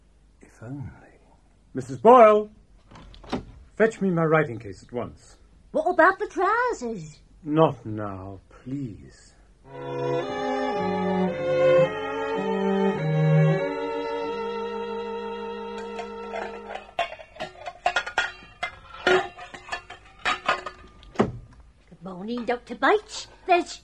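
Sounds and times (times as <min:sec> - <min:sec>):
speech: 0:00.6 - 0:01.1, 0:01.7 - 0:02.6, 0:03.8 - 0:11.0, 0:22.3 - 0:23.8
tuneful melody: 0:09.7 - 0:17.2
irregular rattling metallic clanks: 0:15.8 - 0:21.5.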